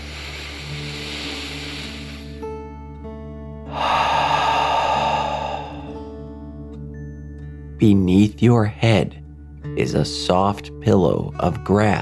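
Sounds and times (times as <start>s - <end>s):
deep breath in and out during a children's mindful relaxation exercise: 0.0s - 2.4s, 3.7s - 6.5s
soft steady music: 0.0s - 12.0s
speech: 7.8s - 9.2s, 9.8s - 12.0s.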